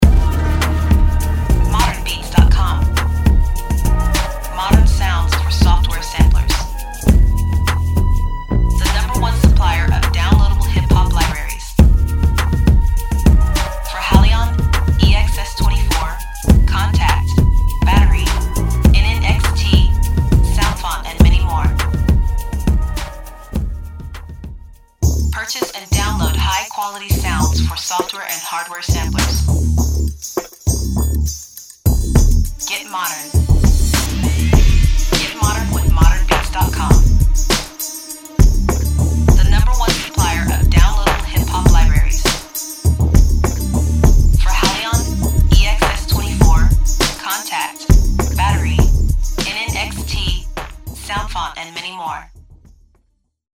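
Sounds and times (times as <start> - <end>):
ethnic percussion: 0.0 - 53.0.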